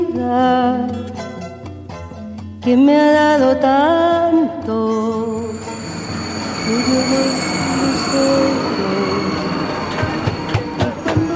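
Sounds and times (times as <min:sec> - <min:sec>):
speech: 0:00.2 - 0:01.2, 0:02.6 - 0:05.6
metro train high tonal whines: 0:05.1 - 0:11.3
metro train in Santiago rumbling along rails: 0:05.3 - 0:11.3
metro train wheels clacking over track joints: 0:09.8 - 0:11.3.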